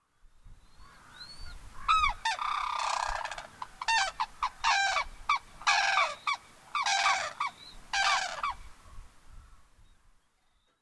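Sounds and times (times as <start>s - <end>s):
White-naped Crane calling in Izumi: 0.8s - 8.6s.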